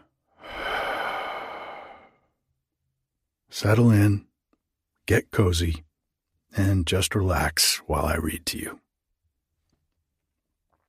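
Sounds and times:
deep breath in and out: 0:00.0 - 0:02.4
speech: 0:03.5 - 0:04.3, 0:05.1 - 0:05.9, 0:06.5 - 0:08.8.

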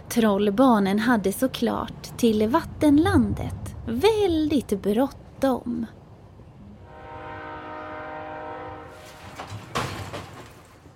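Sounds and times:
speech: 0:00.1 - 0:06.0
arriving train horn or brake squeal: 0:06.8 - 0:09.2
train clunking to a stop: 0:09.0 - 0:10.9.

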